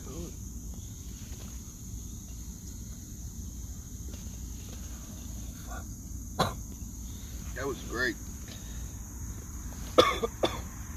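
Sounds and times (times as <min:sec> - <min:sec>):
low hum: 0:00.0 - 0:10.9
harsh raspy coughs of a person after smoking a dab: 0:05.7 - 0:06.7, 0:09.9 - 0:10.7
speech: 0:07.6 - 0:08.3.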